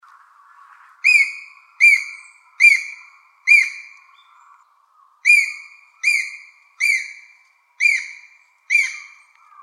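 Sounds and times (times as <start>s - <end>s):
Japanese green woodpecker giving whistled notes: 1.0s - 3.9s, 5.3s - 9.2s.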